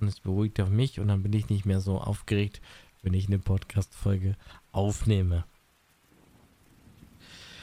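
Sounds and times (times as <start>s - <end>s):
speech: 0.0s - 5.5s
soft steady rain pattering: 0.0s - 7.6s.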